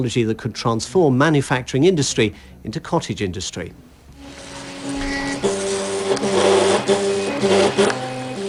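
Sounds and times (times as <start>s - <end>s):
speech: 0.0s - 3.9s, 6.3s - 8.0s
open-source RepRap 3D printer stepper motors whining: 4.2s - 8.4s.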